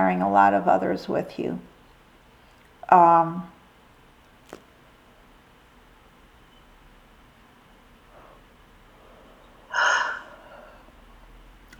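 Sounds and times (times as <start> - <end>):
speech: 0.1 - 1.7, 2.9 - 3.6
drawn-out voiced yawn: 9.7 - 10.8.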